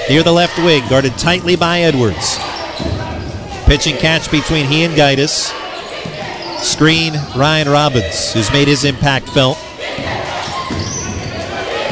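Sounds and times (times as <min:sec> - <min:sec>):
steady crowd noise at a school basketball game: 0:00.0 - 0:11.8
speech: 0:00.1 - 0:02.6, 0:03.7 - 0:05.6, 0:06.6 - 0:10.1
basketball dribbled on a court during a school game: 0:02.4 - 0:03.6, 0:09.2 - 0:11.8.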